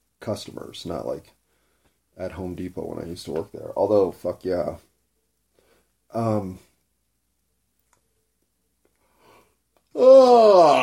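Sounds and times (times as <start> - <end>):
speech: 0.2 - 1.4, 2.2 - 4.9, 6.1 - 6.7, 10.0 - 10.8
person yawning with a long drawn-out voiced yawn: 9.9 - 10.8.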